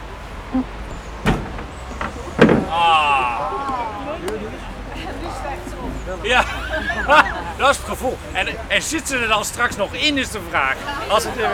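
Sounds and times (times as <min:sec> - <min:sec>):
voices: 0:00.0 - 0:11.5
speech: 0:00.5 - 0:00.8, 0:06.1 - 0:11.5
door closing on an outdoor path with a wind-telephone artwork: 0:00.5 - 0:04.1
laughter: 0:01.6 - 0:11.5.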